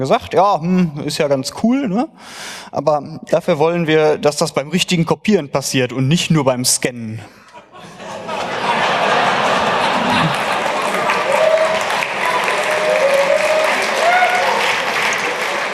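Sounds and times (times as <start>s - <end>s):
speech: 0.0s - 7.4s
laughter: 7.2s - 12.3s
sustained applause from a large audience: 8.3s - 15.7s
whistles or cheers: 11.3s - 14.8s.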